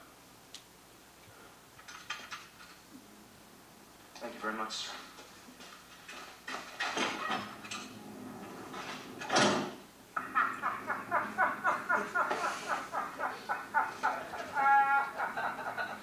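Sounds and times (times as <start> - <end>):
speech: 4.4 - 5.0
heavy door grinding and scraping open in a film scene: 6.8 - 9.8
laughter: 10.2 - 16.0.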